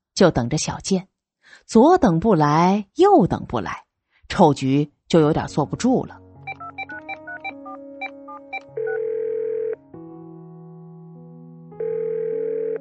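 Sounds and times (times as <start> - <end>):
speech: 0.2 - 6.2
electronic key beeps of a mobile phone being dialed: 6.5 - 9.0
mobile phone ringing tone: 6.5 - 9.8, 11.8 - 12.8.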